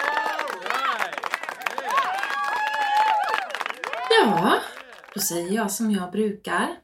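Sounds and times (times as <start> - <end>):
people whooping and cheering: 0.0 - 5.2
applause with many hands clapping: 0.0 - 5.6
speech: 4.2 - 6.8.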